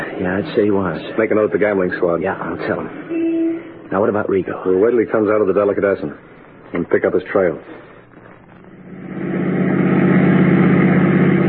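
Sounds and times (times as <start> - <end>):
speech: 0.2 - 3.2, 3.9 - 7.8
car engine running: 8.7 - 11.4.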